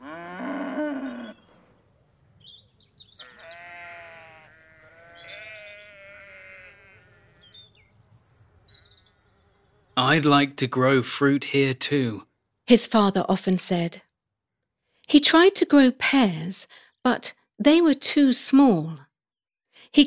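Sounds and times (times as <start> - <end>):
loud low cow moo: 0.0 - 1.4, 3.2 - 7.6
sheep bleating in a farmyard: 3.2 - 7.6
speech: 10.1 - 14.0, 15.1 - 19.1.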